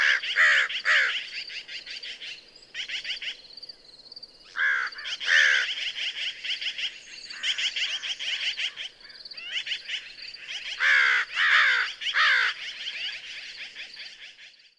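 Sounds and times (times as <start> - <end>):
American crow chorus of raspy calls: 0.0 - 3.5, 4.4 - 14.5.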